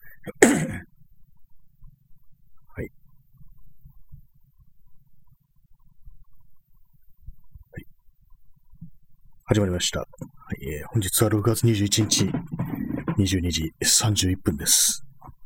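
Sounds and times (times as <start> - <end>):
loud throat-clearing cough: 0.2 - 0.9
faint low rumble: 1.0 - 13.8
speech: 9.5 - 12.6, 13.2 - 15.0.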